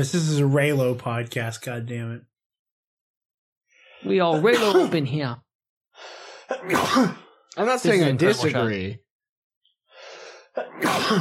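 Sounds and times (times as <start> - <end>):
speech: 0.0 - 2.3, 4.0 - 5.4, 6.0 - 9.0, 10.6 - 11.1
sneeze: 6.6 - 7.2, 10.6 - 11.1.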